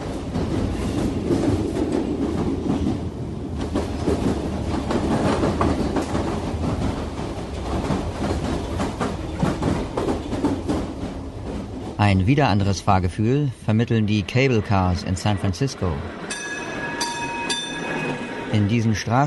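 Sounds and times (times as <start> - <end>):
Underground train carriages rattling in motion: 0.0 - 19.2
speech: 12.0 - 16.3, 18.5 - 19.2.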